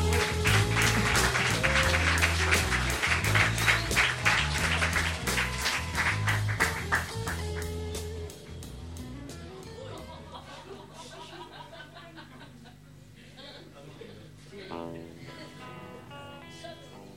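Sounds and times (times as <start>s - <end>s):
audience applause at a poetry night: 0.0s - 7.8s
laughter: 0.1s - 6.7s, 9.6s - 17.1s.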